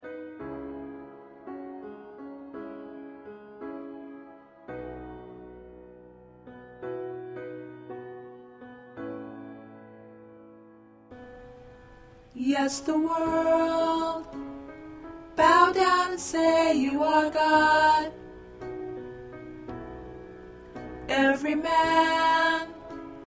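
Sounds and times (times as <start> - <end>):
alto voices of a choir: 12.4 - 14.4, 15.4 - 18.2, 21.1 - 23.0.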